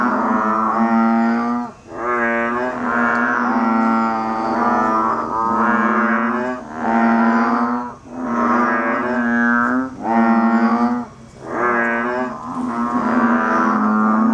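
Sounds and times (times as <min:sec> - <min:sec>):
banded bullfrog giving nasal lowing notes: 0:00.0 - 0:14.3.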